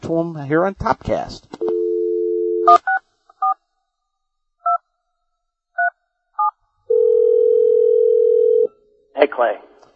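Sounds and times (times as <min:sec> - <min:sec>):
speech: 0:00.1 - 0:01.5, 0:02.6 - 0:03.0, 0:09.2 - 0:09.7
steady phone dial tone: 0:01.6 - 0:02.8, 0:06.9 - 0:08.7.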